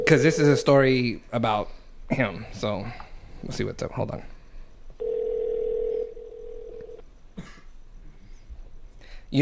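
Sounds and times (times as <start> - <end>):
phone call ringing tone: 0.0 - 0.4, 5.0 - 7.0
speech: 0.1 - 4.3
phone call dialing: 5.0 - 7.0.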